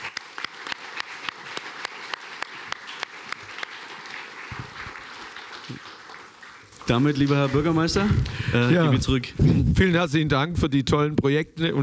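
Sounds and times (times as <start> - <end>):
sharp louder claps near the front: 0.0 - 7.6
crowd applauding: 0.0 - 8.7
speech: 6.9 - 11.8.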